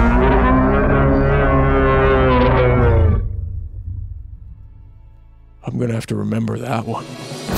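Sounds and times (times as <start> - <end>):
hulking wolf creature bellowing roar: 0.0 - 3.3
speech: 6.0 - 7.4.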